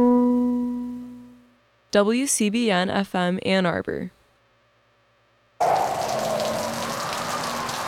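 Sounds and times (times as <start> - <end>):
speech: 1.9 - 4.2
heavy rain drumming on a car windshield: 5.6 - 7.8.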